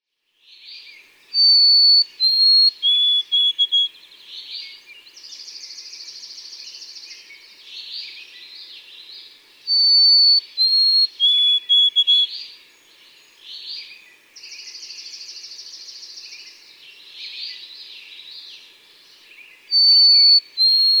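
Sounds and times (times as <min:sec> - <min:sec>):
White-throated Sparrow: 0:01.4 - 0:03.9, 0:09.7 - 0:12.3, 0:19.4 - 0:20.9.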